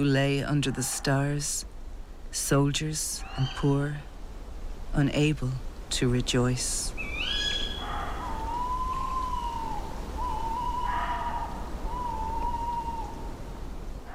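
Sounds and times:
speech: 0:00.0 - 0:01.7, 0:02.3 - 0:04.1, 0:04.9 - 0:07.1
constant hiss: 0:00.0 - 0:14.1
tawny owls hooting outdoors: 0:03.2 - 0:03.7, 0:07.0 - 0:13.5.

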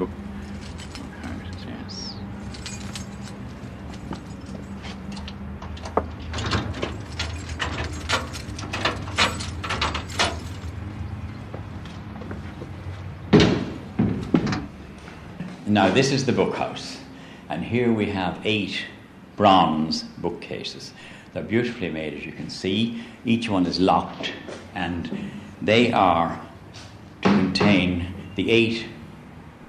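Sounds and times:
steady low hum: 0:00.0 - 0:29.6
keys jingling and scraping in the door lock of a building for memorial books: 0:00.3 - 0:11.1
speech: 0:15.8 - 0:17.0, 0:17.6 - 0:26.5, 0:28.4 - 0:28.9.

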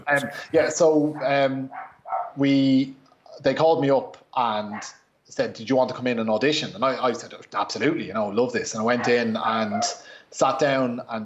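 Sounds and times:
speech: 0:00.0 - 0:11.2
dog barking and yelping excitedly at a knock on the door: 0:01.2 - 0:02.4, 0:04.7 - 0:05.0, 0:09.0 - 0:10.1.

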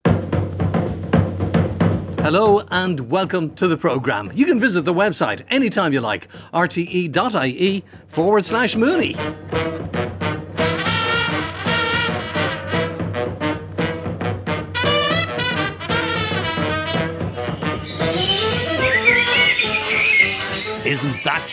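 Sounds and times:
music: 0:00.0 - 0:21.5
speech: 0:02.2 - 0:09.7, 0:21.0 - 0:21.5
dawn chorus birdsong chirps and trills: 0:16.9 - 0:21.5.

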